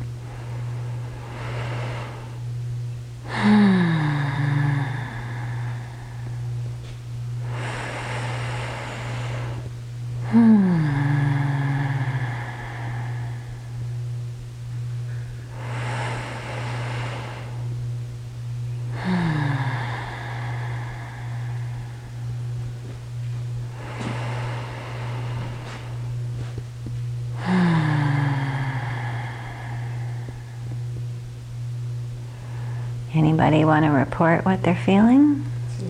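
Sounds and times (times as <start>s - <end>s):
deep fast breathing during a deep-breathing exercise: 0.0s - 2.5s, 3.2s - 14.0s, 14.8s - 17.9s, 18.7s - 26.7s, 27.3s - 31.0s, 32.2s - 33.1s
low electrical hum: 0.0s - 35.8s
speech: 33.4s - 35.5s.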